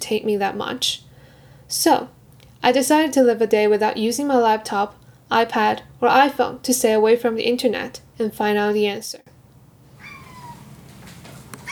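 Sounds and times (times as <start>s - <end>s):
speech: 0.1s - 1.0s, 1.7s - 9.3s
cat meowing for food: 10.0s - 10.7s
faint household rustling: 10.0s - 11.7s.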